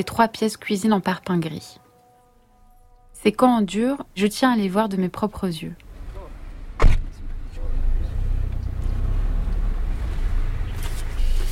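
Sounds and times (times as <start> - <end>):
speech: 0.0 - 1.8, 3.2 - 5.8
car engine rumble and road noise inside a moving car: 3.8 - 11.5
click or thump inside a car: 6.8 - 7.1.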